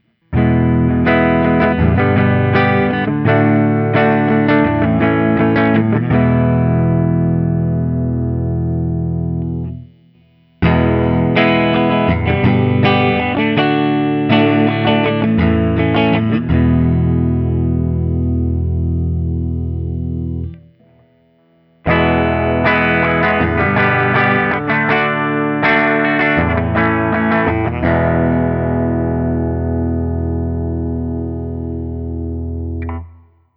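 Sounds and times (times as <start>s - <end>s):
Guild Burnside Lance electric guitar through ODS100 amplifier: 0.0s - 33.3s.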